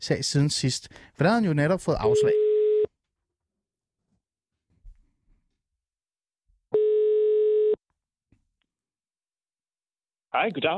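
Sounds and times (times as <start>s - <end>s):
speech: 0.0s - 2.4s, 10.3s - 10.7s
telephone ringback tone while calling: 2.1s - 2.9s, 6.8s - 7.8s.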